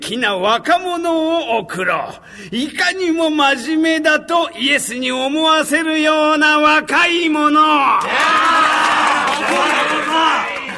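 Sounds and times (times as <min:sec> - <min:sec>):
speech: 0:00.0 - 0:08.6
large crowd cheering and shouting excitedly: 0:08.0 - 0:10.7.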